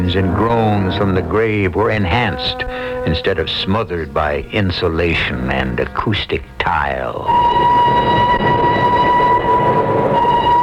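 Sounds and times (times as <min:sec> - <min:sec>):
speech: 0:00.0 - 0:08.1
sustained high metallic whine: 0:00.0 - 0:10.6
train rumbling arriving at a station: 0:00.0 - 0:10.6.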